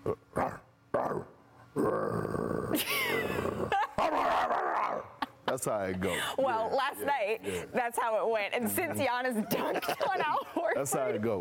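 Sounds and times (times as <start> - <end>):
man imitating dog growling and snarling: 0.0 - 5.1
speech: 2.8 - 3.0, 5.6 - 11.3.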